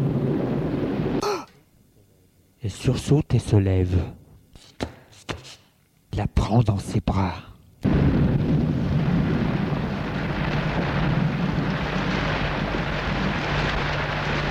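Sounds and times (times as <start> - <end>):
thunderstorm rumbling: 0.0 - 1.2, 7.8 - 14.4
speech: 2.7 - 4.2, 6.5 - 8.0.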